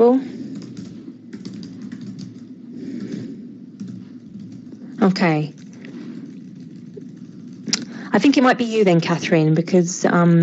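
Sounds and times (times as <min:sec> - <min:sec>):
speech: 0:00.0 - 0:00.4, 0:05.0 - 0:05.6, 0:08.2 - 0:10.4
steady low hum: 0:00.0 - 0:10.3
typing on a computer keyboard during an online meeting: 0:00.4 - 0:08.1.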